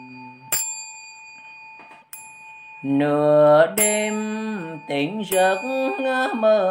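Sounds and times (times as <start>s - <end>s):
bright bell struck and ringing: 0.0s - 6.6s
speech: 2.8s - 6.6s.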